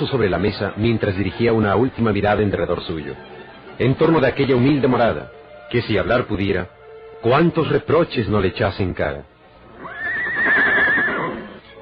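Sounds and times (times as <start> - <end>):
speech: 0.0 - 9.9
horse neighing with a loud high whinny: 9.7 - 11.6.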